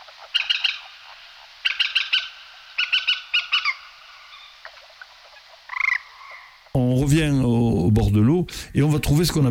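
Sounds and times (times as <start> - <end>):
common kestrel giving shrill rapid calls: 0.0 - 6.7
speech: 6.8 - 9.5.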